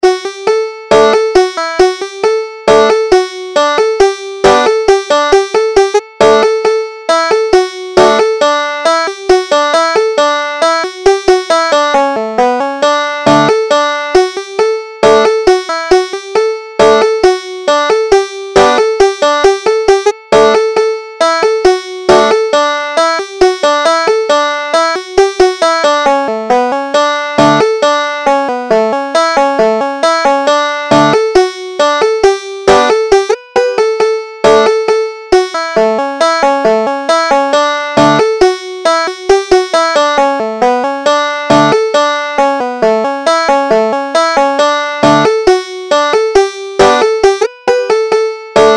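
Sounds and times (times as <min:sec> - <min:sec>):
banjo: 0:00.0 - 0:48.7.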